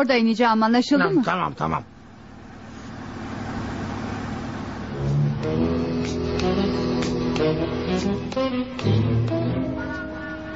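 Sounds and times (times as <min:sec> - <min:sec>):
speech: 0:00.0 - 0:01.9, 0:07.4 - 0:09.4
taxi engine and road noise driving in traffic: 0:02.4 - 0:10.5.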